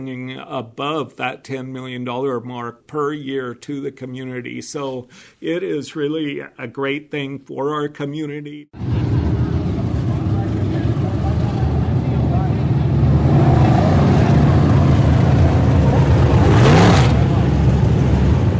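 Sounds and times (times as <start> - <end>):
speech: 0.0 - 8.9
stock cars and modifieds racing at a speedway: 8.8 - 18.5.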